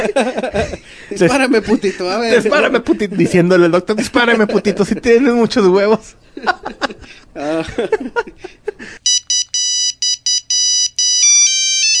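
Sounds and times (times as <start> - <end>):
people laughing: 0.0 - 3.2, 3.9 - 5.4, 6.3 - 9.0
speech: 0.0 - 9.0
telephone ringtone signalling an incoming call: 9.0 - 11.9.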